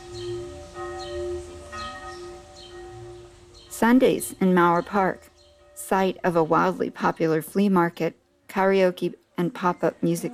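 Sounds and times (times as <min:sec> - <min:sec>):
church bells ringing outside: 0:00.0 - 0:07.5
speech: 0:03.8 - 0:05.3, 0:05.9 - 0:10.3.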